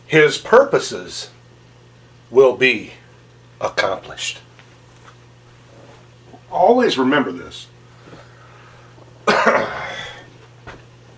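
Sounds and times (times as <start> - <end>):
speech: 0.1 - 1.4, 2.3 - 3.0, 3.6 - 4.5, 6.5 - 7.7
throat clearing: 9.2 - 10.3.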